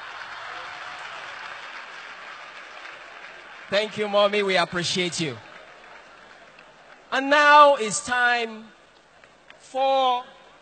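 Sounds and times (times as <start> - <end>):
crowd applauding: 0.0 - 7.2
speech: 3.7 - 5.5, 7.1 - 8.8, 9.7 - 10.6.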